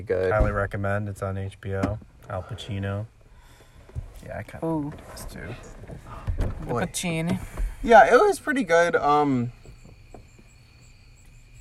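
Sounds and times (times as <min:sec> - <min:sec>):
speech: 0:00.0 - 0:03.2, 0:04.2 - 0:09.6
crickets chirping: 0:00.0 - 0:11.6.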